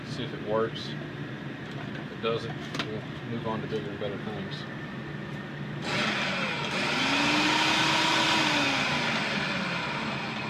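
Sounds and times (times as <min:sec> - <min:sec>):
speech: 0:00.2 - 0:01.3, 0:02.2 - 0:04.9
food processor chopping hops: 0:05.8 - 0:10.4.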